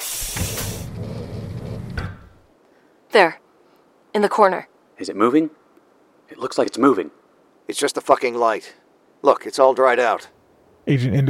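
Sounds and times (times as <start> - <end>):
heavy door opening with a hissing rush of air: 0.0 - 2.5
heavy door solid clunk: 0.2 - 2.4
low mechanical rumble of a heavy door: 0.4 - 2.5
speech: 3.2 - 3.4, 4.2 - 5.6, 6.3 - 11.2.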